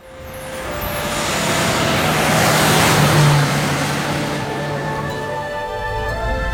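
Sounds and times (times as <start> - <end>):
jeep engine starting and driving: 0.0 - 6.5.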